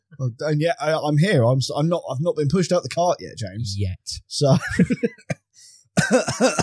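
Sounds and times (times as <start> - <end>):
speech: 0.2 - 5.4, 6.0 - 6.6
faint breath: 5.5 - 5.9
person coughing over a table: 6.0 - 6.6.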